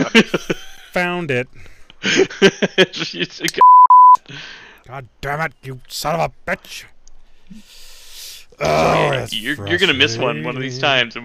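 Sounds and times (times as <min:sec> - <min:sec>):
laughter: 0:00.0 - 0:01.0, 0:02.0 - 0:03.6
speech: 0:00.2 - 0:07.8, 0:08.6 - 0:11.2
censor bleep covering a swear word: 0:03.6 - 0:04.2.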